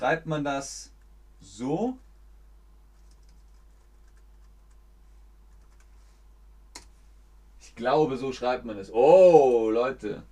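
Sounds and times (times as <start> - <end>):
speech: 0.0 - 2.0, 7.8 - 10.2
low steady hum: 0.0 - 10.2
faint typing on a computer keyboard in an online quiz chat: 3.0 - 4.8, 5.5 - 5.9.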